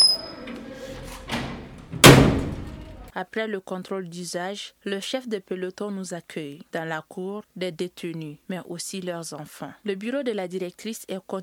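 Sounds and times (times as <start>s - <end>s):
heavy metal prison doors scraping as they open: 0.0s - 3.1s
speech: 3.2s - 11.4s.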